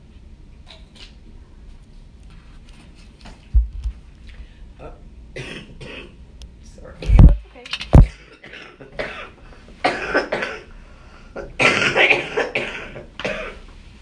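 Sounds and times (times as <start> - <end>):
person coughing: 5.4 - 6.2, 8.1 - 10.7, 11.4 - 13.6.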